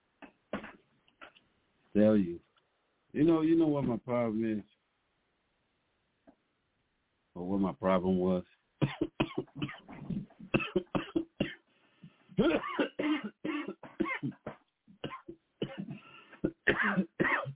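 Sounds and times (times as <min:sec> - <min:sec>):
speech: 0:02.0 - 0:02.4, 0:03.1 - 0:04.7, 0:07.4 - 0:09.0
person coughing: 0:08.8 - 0:11.6, 0:12.4 - 0:17.5.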